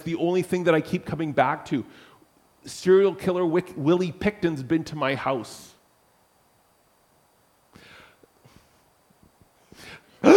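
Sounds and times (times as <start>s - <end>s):
speech: 0.0s - 5.7s
sharp breathy dramatic gasps: 1.9s - 2.2s, 7.7s - 8.8s, 9.7s - 10.2s.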